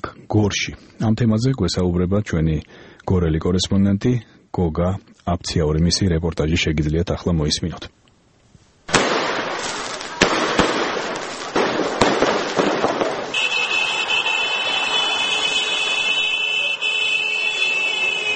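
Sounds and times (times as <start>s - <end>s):
speech: 0.3s - 8.0s
fireworks celebrating local athletes' sporting success in Gori, Georgia: 8.9s - 18.3s.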